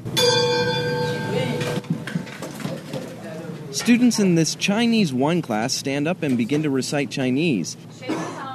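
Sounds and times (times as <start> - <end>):
school bell struck and ringing: 0.0 - 1.8
speech: 3.8 - 8.3.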